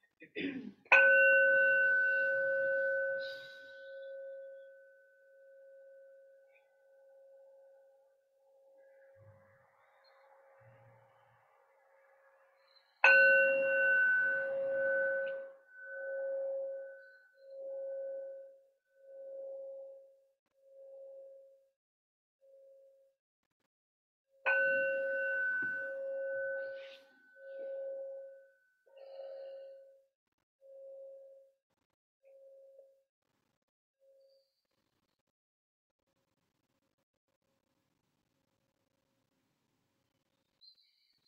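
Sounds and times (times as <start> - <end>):
meditation bell ringing: 0.9 - 7.9, 13.0 - 20.1, 24.5 - 29.9.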